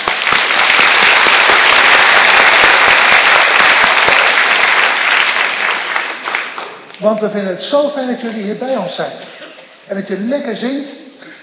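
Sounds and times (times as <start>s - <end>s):
audience applauding a children's choir: 0.0s - 7.3s
speech: 7.0s - 11.0s.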